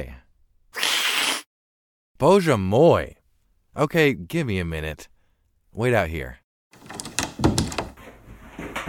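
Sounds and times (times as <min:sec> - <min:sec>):
speech: 0:00.0 - 0:00.2, 0:02.2 - 0:03.2, 0:03.8 - 0:05.1, 0:05.8 - 0:06.4
door opening: 0:06.8 - 0:08.0
knocks: 0:06.8 - 0:08.0.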